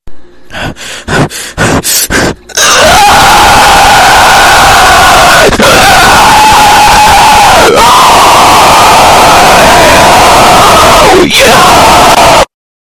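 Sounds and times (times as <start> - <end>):
loud demon scream: 2.6 - 12.6.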